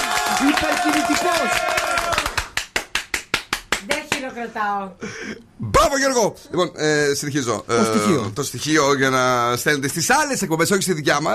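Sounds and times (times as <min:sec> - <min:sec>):
single pair of hands clapping: 0:00.0 - 0:04.3
speech: 0:00.4 - 0:01.6, 0:04.3 - 0:11.3.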